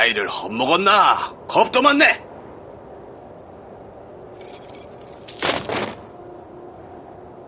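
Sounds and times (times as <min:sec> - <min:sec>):
speech: 0:00.0 - 0:02.2
bundle of keys jingling: 0:04.4 - 0:06.1.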